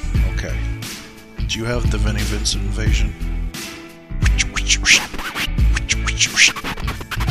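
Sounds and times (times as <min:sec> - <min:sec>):
speech: 0:01.5 - 0:03.3, 0:04.7 - 0:05.2
thumping music bed: 0:01.9 - 0:07.2
vinyl record scratching: 0:04.2 - 0:07.2.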